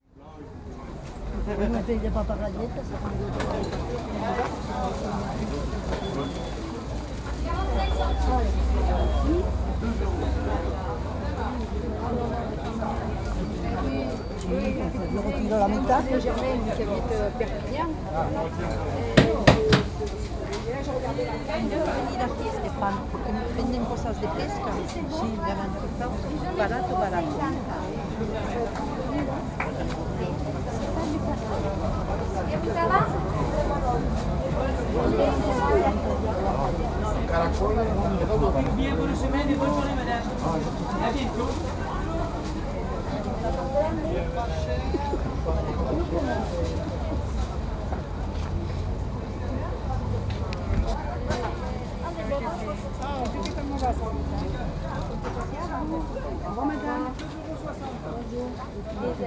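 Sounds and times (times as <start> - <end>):
market ambience: 0.0 - 59.2.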